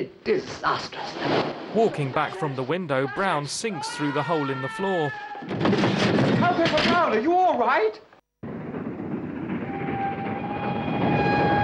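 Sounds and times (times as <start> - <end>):
speech: 0.0 - 8.1
train rumbling on tracks heard from inside a carriage: 8.6 - 11.6.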